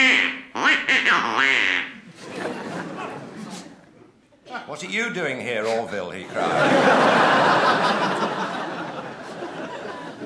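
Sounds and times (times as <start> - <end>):
loud raspy duck quacks: 0.0 - 2.0
soft noisy jumble of chatter and chuckling: 2.0 - 4.3, 6.2 - 10.2
speech: 4.7 - 8.2.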